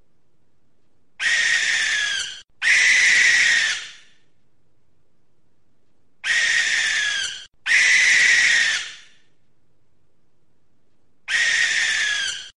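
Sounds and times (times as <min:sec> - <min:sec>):
barn owl giving hissing screeches in Gloucestershire: 0:01.2 - 0:04.2, 0:06.2 - 0:09.3, 0:11.3 - 0:12.5.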